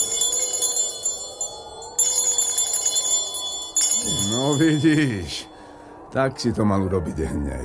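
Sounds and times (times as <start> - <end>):
doorbell ringing with a bright metallic jingle: 0.0 - 5.6
speech: 4.5 - 5.5, 6.1 - 7.6.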